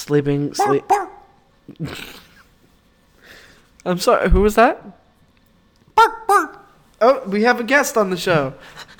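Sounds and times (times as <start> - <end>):
speech: 0.0 - 1.0, 1.7 - 2.2, 3.8 - 5.0, 6.0 - 8.9
stray dog barking: 0.6 - 1.4, 6.0 - 6.7.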